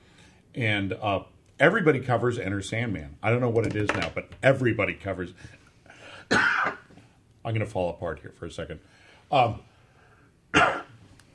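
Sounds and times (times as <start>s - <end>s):
speech: 0.5s - 5.6s, 6.3s - 6.5s, 7.4s - 9.7s
harsh coughs: 6.3s - 6.9s, 10.5s - 11.0s.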